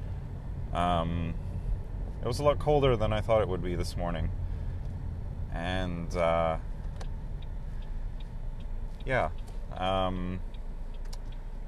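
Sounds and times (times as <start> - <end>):
car heater blowing hot air: 0.0 - 11.6
speech: 0.7 - 1.5, 2.2 - 4.4, 5.5 - 6.7, 9.0 - 10.5
faint ticks: 6.8 - 11.6.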